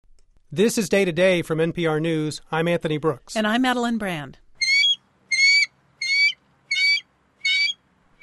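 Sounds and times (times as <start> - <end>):
speech: 0.5 - 4.4
bald eagle giving shrill squeaky calls: 4.6 - 8.2.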